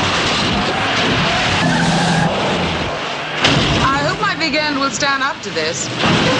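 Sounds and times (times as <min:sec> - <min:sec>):
car tires skidding and squealing in a movie car chase: 0:00.0 - 0:04.1
car engines roaring in a movie car chase: 0:00.0 - 0:06.3
speech: 0:04.9 - 0:06.3.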